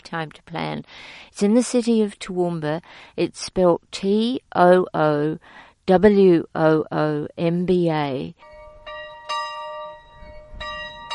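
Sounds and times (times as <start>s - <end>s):
speech: 0.1s - 8.5s
school bell ringing with metallic strokes: 8.4s - 11.1s.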